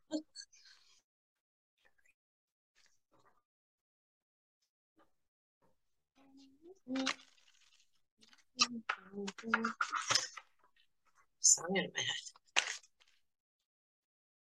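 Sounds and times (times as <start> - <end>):
speech: 6.6 - 7.2, 8.6 - 10.4, 11.4 - 12.4
deck of cards being shuffled: 6.9 - 10.5.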